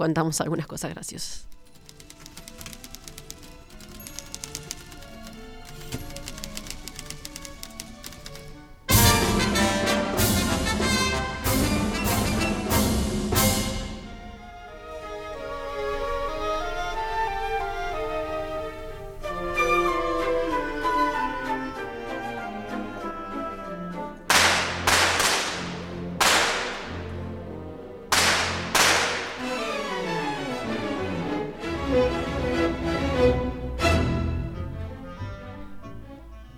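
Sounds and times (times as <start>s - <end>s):
speech: 0.0s - 1.6s
typewriter clacking: 1.5s - 8.6s
orchestral ballet music: 8.9s - 36.5s
gunshot-like sound effects: 24.3s - 27.0s, 28.1s - 29.6s.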